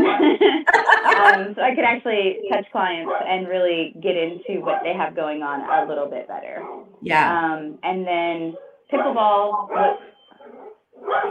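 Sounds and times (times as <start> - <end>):
laughter: 0.0 - 1.6
speech: 1.3 - 10.1, 11.0 - 11.3
dog barking at passerby: 3.0 - 3.4, 6.6 - 6.9, 8.5 - 11.3.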